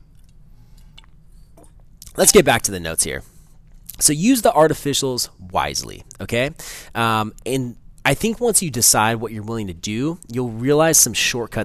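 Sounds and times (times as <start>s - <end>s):
person sipping water: 0.1s - 2.2s
speech: 2.2s - 3.3s, 4.0s - 11.6s.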